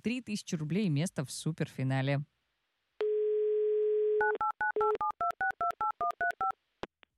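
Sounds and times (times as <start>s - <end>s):
speech: 0.0s - 2.3s
telephone dial tone: 3.0s - 6.5s.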